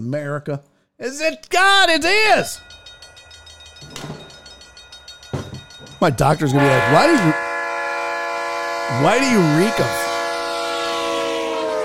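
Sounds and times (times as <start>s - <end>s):
speech: 0.0s - 2.8s, 6.0s - 7.4s, 8.9s - 10.0s
train rolling past on rails: 2.4s - 11.8s.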